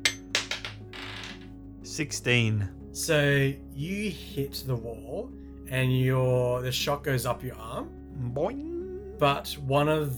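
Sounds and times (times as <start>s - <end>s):
dice rolling for tabletop role-playing game: 0.0s - 1.5s
speech: 1.9s - 10.1s.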